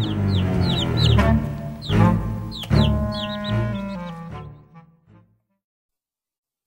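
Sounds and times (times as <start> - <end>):
small chicks peeping: 0.0 - 4.5.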